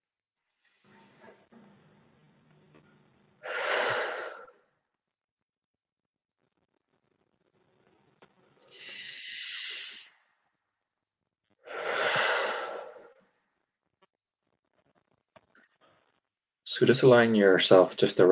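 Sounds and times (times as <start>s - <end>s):
deep breaths exhaled through the mouth: 3.4s - 4.7s, 8.6s - 10.2s, 11.6s - 13.3s
speech: 16.8s - 18.3s.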